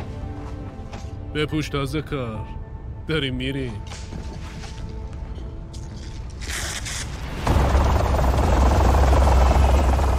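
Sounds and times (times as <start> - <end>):
speech: 1.3 - 4.3
helicopter taking off: 7.4 - 10.1.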